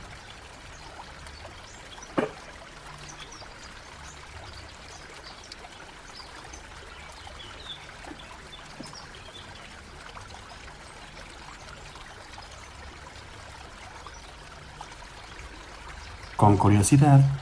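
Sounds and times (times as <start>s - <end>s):
river water flowing and babbling: 0.0s - 17.4s
sharp knock or splash: 2.1s - 2.4s
speech: 16.4s - 17.4s.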